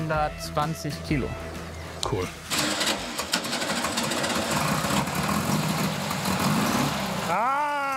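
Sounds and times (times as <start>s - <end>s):
speech: 0.1s - 2.6s
44 hp buggy engine running: 2.5s - 7.9s.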